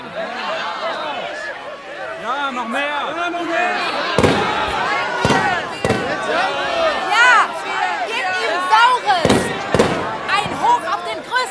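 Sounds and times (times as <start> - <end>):
laughter: 0.0 - 11.5
speech: 2.5 - 4.3
firecrackers thrown by demonstrators banging: 3.7 - 11.5.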